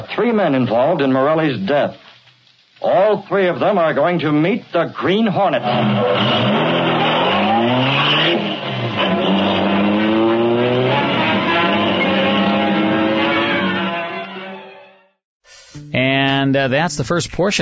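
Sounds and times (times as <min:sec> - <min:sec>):
speech: 0:00.0 - 0:02.0, 0:02.8 - 0:06.5, 0:15.9 - 0:17.6
car engine revving and pulling away as a radio drama sound effect: 0:05.6 - 0:14.0.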